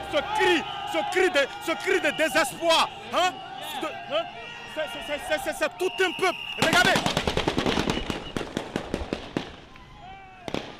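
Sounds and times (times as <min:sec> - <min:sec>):
crowd noise and voices of protesters: 0:00.0 - 0:07.3
speech: 0:00.1 - 0:07.3
gunshots fired at protesters in Ouagadougou: 0:06.6 - 0:09.6.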